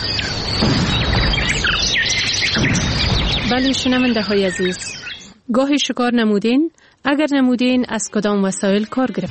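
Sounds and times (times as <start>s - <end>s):
birds in flight chirping and calling: 0.0s - 5.4s, 7.6s - 9.2s
speech: 3.5s - 9.2s.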